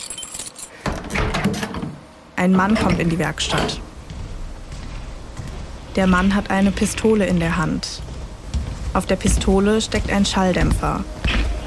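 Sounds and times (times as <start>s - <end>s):
keys jingling and scraping in a workshop door lock: 0.0s - 0.8s
speech: 2.4s - 3.9s, 6.0s - 8.1s, 9.0s - 11.4s.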